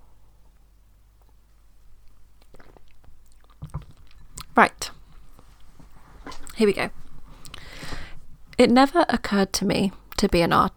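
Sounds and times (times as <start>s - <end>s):
low room hum: 0.0s - 10.7s
wet mouth clicks: 2.0s - 4.6s, 7.4s - 7.6s
person sipping water: 2.0s - 6.6s, 7.3s - 8.1s
person swallowing: 2.4s - 4.6s
speech: 4.6s - 4.8s, 6.6s - 7.0s, 8.6s - 10.7s.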